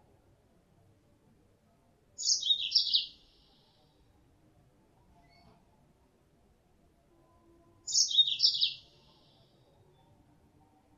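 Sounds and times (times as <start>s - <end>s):
female Mozambique canary lure call: 2.2s - 3.1s, 7.9s - 8.8s.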